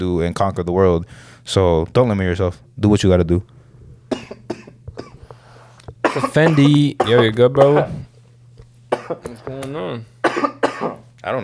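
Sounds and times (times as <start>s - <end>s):
speech: 0.0s - 3.6s, 6.2s - 8.1s, 9.1s - 11.4s
steady low hum: 0.0s - 11.4s
harsh coughs: 4.1s - 5.3s, 6.0s - 8.1s, 8.9s - 9.5s, 10.2s - 11.0s.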